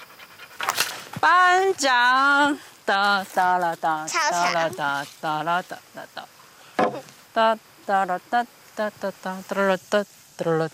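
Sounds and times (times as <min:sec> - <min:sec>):
dog panting: 0:00.0 - 0:01.2
speech: 0:01.2 - 0:06.3, 0:07.4 - 0:10.7.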